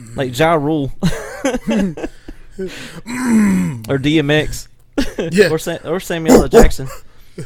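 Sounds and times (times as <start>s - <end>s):
speech: 0.1s - 7.4s
laughter: 1.0s - 2.7s
man imitating a constipated-sounding rap delivery with strained gravelly groans and grunts: 3.0s - 4.0s, 6.3s - 6.9s.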